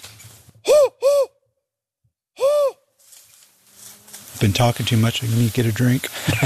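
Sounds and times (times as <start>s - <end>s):
person imitating spotted owl hoots: 0.6s - 1.4s, 2.4s - 2.8s
speech: 4.4s - 6.4s
laughter: 6.0s - 6.4s.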